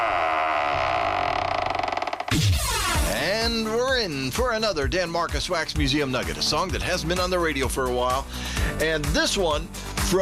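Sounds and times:
heavy metal vault door creaking open: 0.0s - 3.2s
speech: 4.1s - 10.2s.

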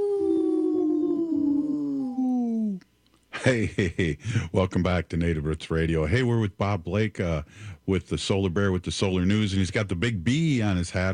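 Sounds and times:
wolf howling: 0.0s - 2.7s
speech: 3.4s - 11.1s.

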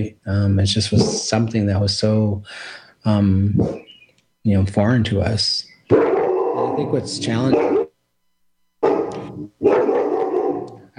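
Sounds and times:
speech: 0.0s - 6.0s, 6.8s - 7.7s
dog barking: 1.0s - 1.3s, 3.6s - 3.9s, 5.9s - 7.9s, 8.8s - 10.8s.

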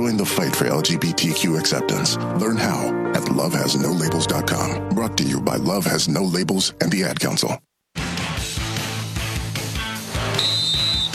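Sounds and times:
speech: 0.0s - 7.6s
rhythmic music with a steady beat and bass: 8.0s - 11.1s
referee's sharp sustained whistle blast: 10.1s - 11.1s.

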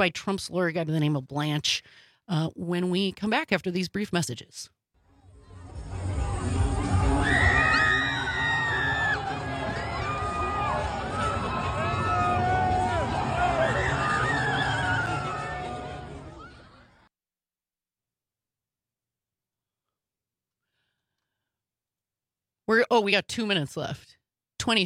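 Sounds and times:
speech: 0.0s - 4.8s, 22.7s - 24.8s
loud dense crowd shouting and yelling: 5.4s - 17.0s.

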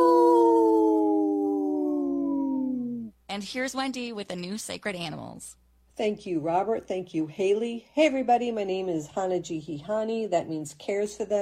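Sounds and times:
wolf howling: 0.0s - 3.1s
speech: 3.4s - 11.3s.

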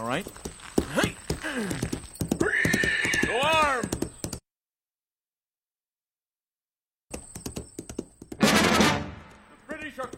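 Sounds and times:
horse hooves galloping: 0.0s - 4.4s, 7.2s - 8.7s, 9.7s - 10.1s
speech: 0.1s - 2.0s.

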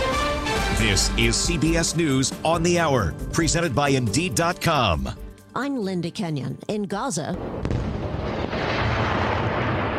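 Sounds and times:
speech: 0.8s - 7.7s
explosions from renewed fighting rumbling: 7.4s - 9.9s.

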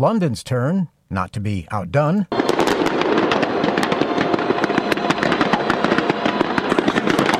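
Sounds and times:
speech: 0.0s - 3.0s
fireworks display exploding: 2.3s - 7.3s.

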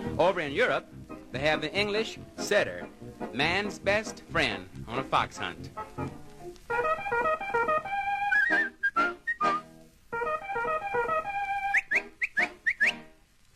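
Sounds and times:
speech: 0.2s - 6.1s
bright melodic whistling: 6.7s - 13.1s.

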